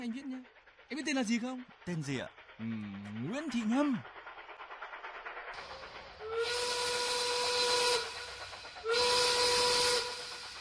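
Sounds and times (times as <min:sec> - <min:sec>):
speech: 0:00.0 - 0:04.2
moving passenger train rumbling: 0:00.0 - 0:10.5
passenger train whistle: 0:06.3 - 0:10.5.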